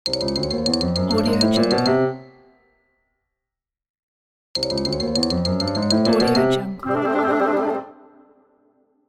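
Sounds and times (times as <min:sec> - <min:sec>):
cartoon piano suspense run up: 0:00.2 - 0:02.2, 0:04.6 - 0:08.8.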